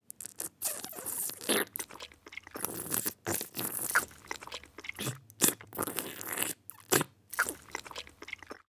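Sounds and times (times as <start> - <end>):
person drinking: 0.0 - 8.7
person eating soup with light slurping: 0.0 - 8.7.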